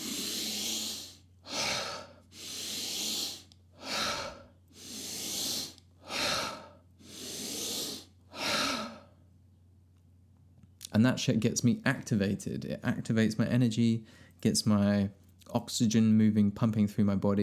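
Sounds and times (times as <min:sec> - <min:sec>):
deep breathing exercise with long airy breaths and sharper ones: 0:00.0 - 0:09.2
speech: 0:11.0 - 0:17.4.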